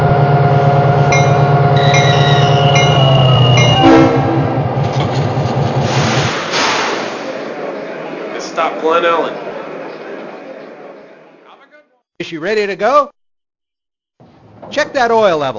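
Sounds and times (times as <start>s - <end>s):
train horn: 0.0s - 4.9s
train engine rumbling along the track: 0.0s - 11.7s
train rolling wheel noise and hiss: 4.8s - 11.6s
speech: 12.3s - 13.2s, 14.7s - 15.5s.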